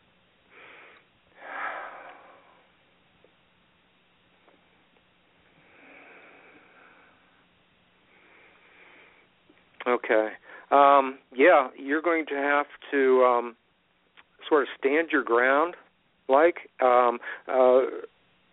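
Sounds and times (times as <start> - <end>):
person taking slow deep breaths: 0.5 - 2.7, 5.5 - 9.4, 10.4 - 10.7, 17.2 - 17.5
speech: 9.9 - 13.6, 14.5 - 18.1.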